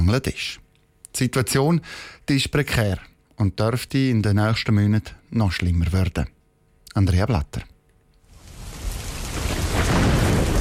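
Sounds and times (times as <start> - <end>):
speech: 0.1 - 0.6, 1.2 - 7.7
heavy monsoon rain pouring: 8.3 - 10.5
low thunder rumbling: 8.5 - 10.5.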